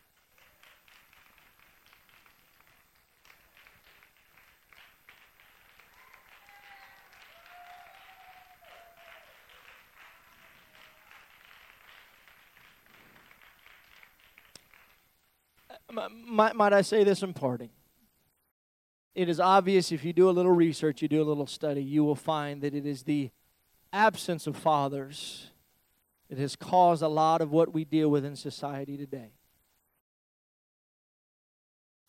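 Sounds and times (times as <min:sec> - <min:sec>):
large crowd applauding: 0:00.0 - 0:15.7
faint cheers: 0:05.8 - 0:11.4
speech: 0:15.9 - 0:17.8, 0:19.2 - 0:25.5, 0:26.3 - 0:29.4.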